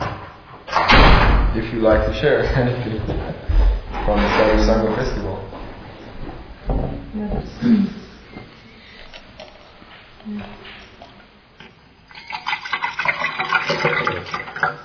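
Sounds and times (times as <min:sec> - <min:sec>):
quiet noise: 0:00.0 - 0:14.8
speech: 0:01.6 - 0:05.6
water pouring into a glass: 0:12.0 - 0:14.8.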